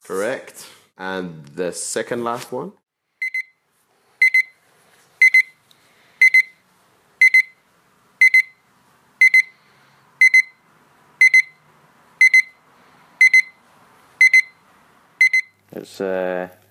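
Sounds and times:
speech: 0.1s - 2.8s, 15.8s - 16.6s
alarm clock beeping: 3.2s - 3.6s, 4.2s - 4.6s, 5.2s - 5.5s, 6.2s - 6.6s, 7.2s - 7.6s, 8.2s - 8.6s, 9.2s - 9.6s, 10.2s - 10.6s, 11.2s - 11.6s, 12.2s - 12.6s, 13.2s - 13.6s, 14.2s - 14.6s, 15.2s - 15.5s.

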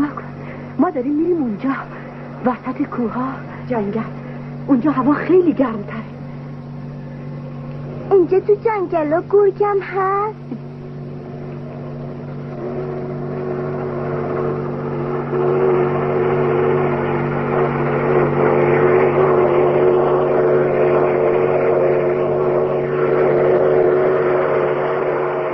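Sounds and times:
speech: 0.8s - 6.1s, 8.1s - 10.6s
train speeding past in snowy forested mountains: 12.1s - 25.5s.

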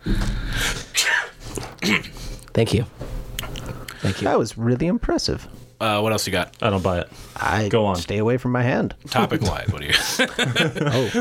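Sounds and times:
person sneezing on command: 0.8s - 2.2s
speech: 1.8s - 3.0s, 4.0s - 11.1s
laughter: 9.8s - 11.1s.

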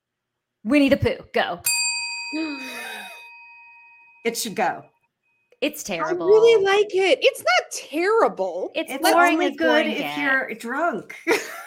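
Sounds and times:
speech: 0.6s - 2.9s, 4.2s - 4.9s, 5.6s - 11.6s
bright metallic bell dinged to start round one: 1.6s - 6.6s.

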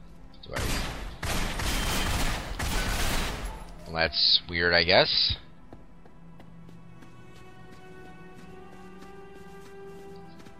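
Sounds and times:
video game gunfire: 0.6s - 3.7s
speech: 3.9s - 5.4s.

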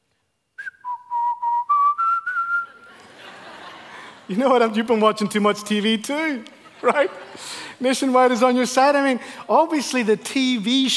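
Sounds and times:
noise: 0.0s - 10.9s
man whistling a TV commercial jingle: 0.6s - 2.8s
laughter: 2.6s - 5.0s, 6.5s - 8.1s
speech: 4.3s - 10.9s.

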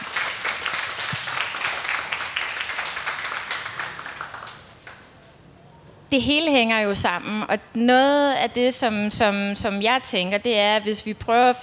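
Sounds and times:
audience applause: 0.0s - 5.1s
speech: 6.1s - 11.6s.

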